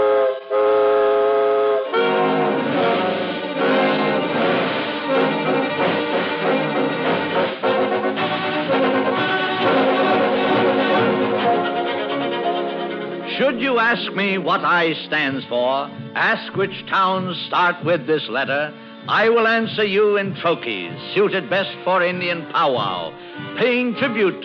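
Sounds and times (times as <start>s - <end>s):
steam train whistle multi-toned blast: 0.0s - 12.8s
steam locomotive pulling away with rhythmic churn: 0.0s - 24.4s
speech: 13.9s - 24.4s.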